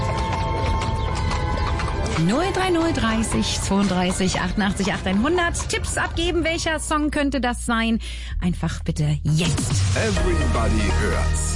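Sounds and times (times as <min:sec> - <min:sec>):
hooves of a horse pulling a carriage clip-clopping: 0:00.0 - 0:07.1
speech: 0:02.2 - 0:11.5.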